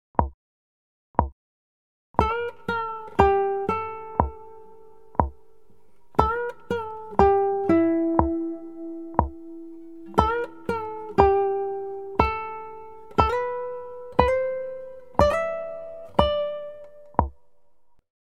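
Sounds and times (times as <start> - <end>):
acoustic pop guitar intro: 2.2 - 17.6.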